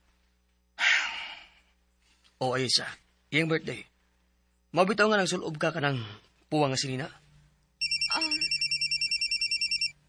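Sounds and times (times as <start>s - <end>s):
speech: 2.4s - 3.9s, 4.7s - 7.2s
mobile phone ringtone trilling in rapid electronic pulses: 7.8s - 10.0s.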